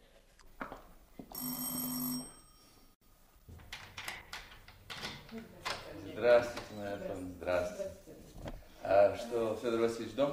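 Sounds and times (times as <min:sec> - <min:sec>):
electric doorbell ringing: 0:01.3 - 0:03.0
speech: 0:05.4 - 0:05.6, 0:06.2 - 0:08.1, 0:08.9 - 0:10.3.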